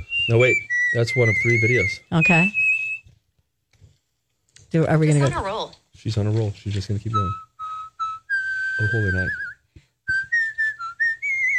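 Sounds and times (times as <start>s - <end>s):
person whistling a melody in bird-like tones: 0.0s - 3.2s, 7.0s - 11.5s
speech: 0.3s - 2.6s, 4.7s - 7.4s, 8.8s - 9.4s.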